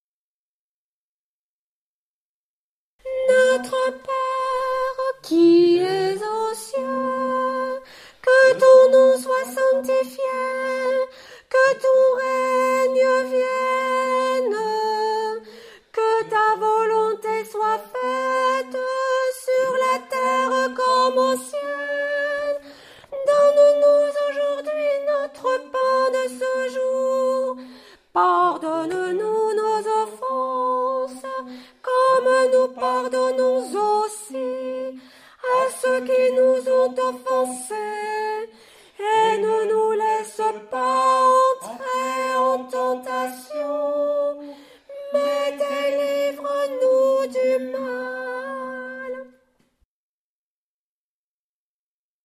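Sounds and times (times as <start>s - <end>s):
tenor singing: 3.0s - 49.4s.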